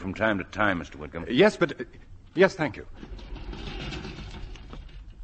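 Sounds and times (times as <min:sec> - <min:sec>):
speech: 0:00.1 - 0:03.6
elevator door opening and closing: 0:02.9 - 0:05.0.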